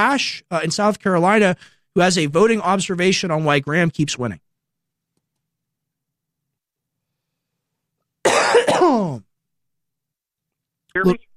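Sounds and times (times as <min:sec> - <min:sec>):
speech: 0:00.0 - 0:04.5, 0:10.9 - 0:11.3
person clearing throat: 0:08.2 - 0:09.3
person coughing with harsh rasping bursts: 0:08.2 - 0:09.3.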